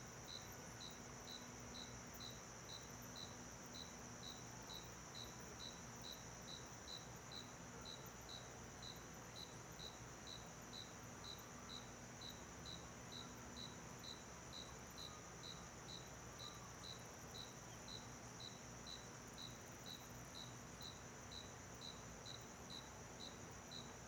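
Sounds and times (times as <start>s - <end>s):
cricket chirping in a small-town backyard at night: 0.0s - 24.0s.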